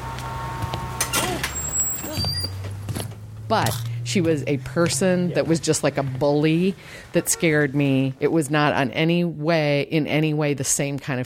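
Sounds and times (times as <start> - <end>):
city bus engine idling with a low rumble: 0.0 - 8.9
city bus air brakes hissing: 1.0 - 2.6
brief squeal: 1.1 - 2.5
speech: 3.5 - 11.2.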